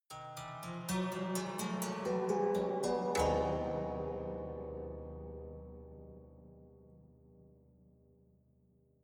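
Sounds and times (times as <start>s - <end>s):
haunted strings rising chromatically: 1.6s - 6.9s.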